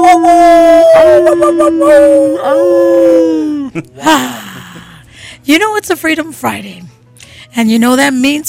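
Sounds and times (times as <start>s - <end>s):
several people howling like a pack of dogs in a studio: 0.0s - 3.7s
speech: 1.3s - 3.1s, 3.8s - 4.4s, 5.4s - 6.9s, 7.5s - 8.4s.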